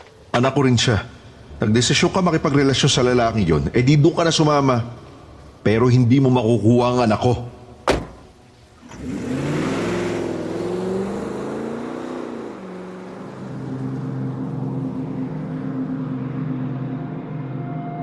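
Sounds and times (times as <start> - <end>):
speech: 0.4 - 5.0, 5.6 - 7.6
car engine revving and speeding away: 8.7 - 17.8.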